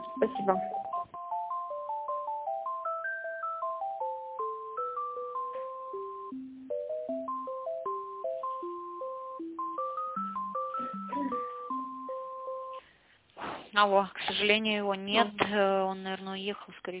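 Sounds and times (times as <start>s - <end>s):
electronic two-voice telephone hold melody during call transfer: 0.0s - 12.8s
speech: 0.2s - 0.8s, 13.8s - 16.9s.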